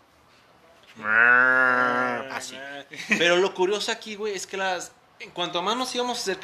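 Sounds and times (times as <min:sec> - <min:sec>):
speech: 0:01.0 - 0:01.3, 0:02.4 - 0:06.4
person imitating a cow with a long loud moo: 0:01.0 - 0:02.4.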